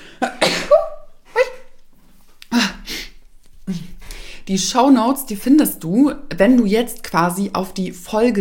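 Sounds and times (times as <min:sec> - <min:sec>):
sharp explosive breathy sneezes: 0:00.2 - 0:01.7, 0:02.5 - 0:04.0
speech: 0:04.5 - 0:08.3.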